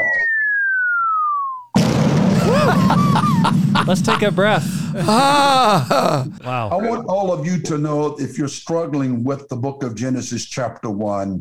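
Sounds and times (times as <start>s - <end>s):
falling whistle sound effect: 0.0s - 1.7s
bomb explosion sound effect with sustained roaring rumble: 1.8s - 4.1s
laughter: 2.4s - 6.8s
speech: 3.9s - 11.4s.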